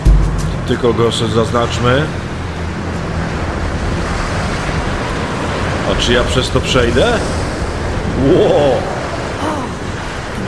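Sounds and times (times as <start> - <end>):
strong wind blowing: 0.0 - 10.4
speech: 0.7 - 2.3, 5.9 - 7.4, 8.1 - 9.0.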